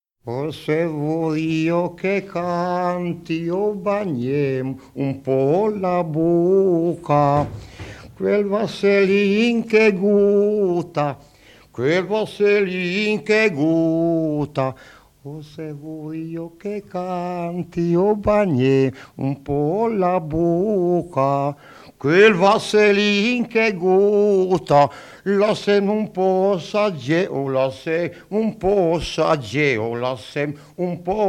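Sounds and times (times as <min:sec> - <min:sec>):
person singing: 0:00.3 - 0:11.2, 0:11.8 - 0:31.2.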